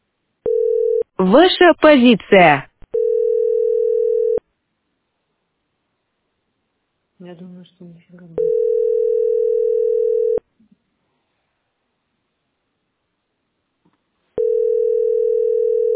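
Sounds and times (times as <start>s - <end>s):
telephone dial tone: 0.5s - 1.0s, 2.9s - 4.4s, 8.4s - 10.4s, 14.4s - 15.9s
speech: 1.2s - 2.7s, 7.2s - 8.6s.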